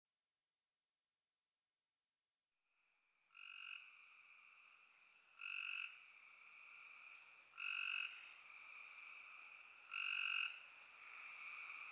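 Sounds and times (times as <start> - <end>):
spring peepers calling in a high chorus: 3.3 - 4.2, 5.4 - 11.9
spring peeper shrill call bursts: 5.4 - 5.9, 7.6 - 8.2, 9.9 - 10.6.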